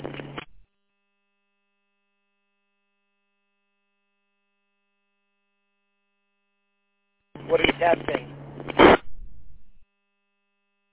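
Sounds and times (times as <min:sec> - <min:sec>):
faint steady electrical hum: 0:04.4 - 0:10.9
burst of static from a radio transmission: 0:07.4 - 0:09.8
speech: 0:07.5 - 0:08.4.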